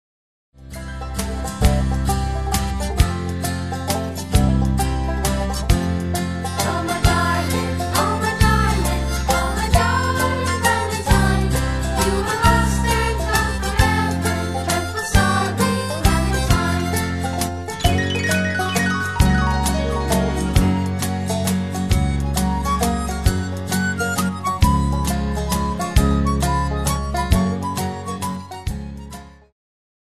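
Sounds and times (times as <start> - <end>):
karaoke instrumental: 1.4 - 29.0.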